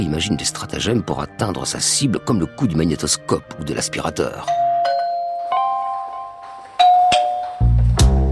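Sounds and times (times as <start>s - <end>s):
speech: 0.0s - 4.7s
doorbell chime at a home's front door: 4.4s - 8.2s.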